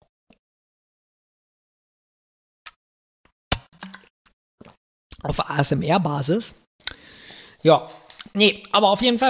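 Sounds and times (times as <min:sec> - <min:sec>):
sipping and swallowing water: 0:03.6 - 0:05.2
speech: 0:05.2 - 0:06.7, 0:07.6 - 0:09.2.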